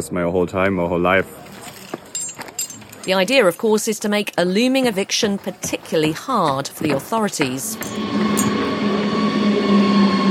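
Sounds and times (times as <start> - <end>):
speech: 0.0 - 1.6, 3.1 - 8.3
train running on a railway near a town: 4.8 - 10.2.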